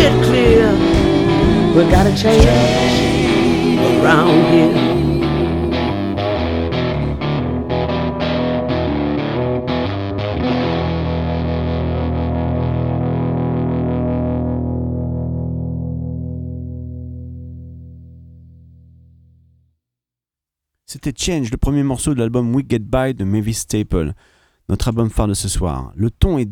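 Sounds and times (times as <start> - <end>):
speech: 0.0 - 0.8, 1.8 - 3.0, 4.0 - 4.9, 21.0 - 26.5
gritty gospel-tinged blues song: 0.0 - 16.6
loud distorted electric guitar riffs: 0.0 - 19.1.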